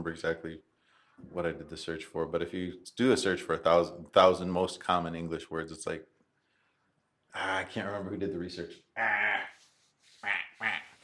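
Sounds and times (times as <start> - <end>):
speech: 0.1 - 6.1, 7.3 - 9.5
person imitating duck quacks: 9.0 - 9.6, 10.2 - 11.0.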